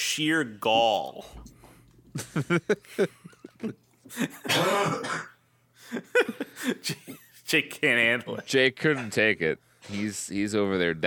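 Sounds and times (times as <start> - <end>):
speech: 0.2 - 1.6, 2.2 - 5.3, 5.9 - 11.0
laughter: 2.1 - 4.8, 5.8 - 7.4
harsh wet coughing with spittle: 2.3 - 5.4.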